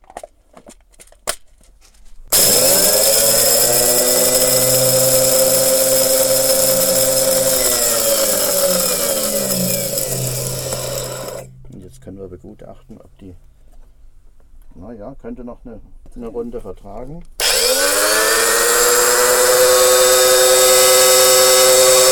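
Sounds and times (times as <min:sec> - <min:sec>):
coffee grinder: 0:02.3 - 0:11.5, 0:17.4 - 0:22.1.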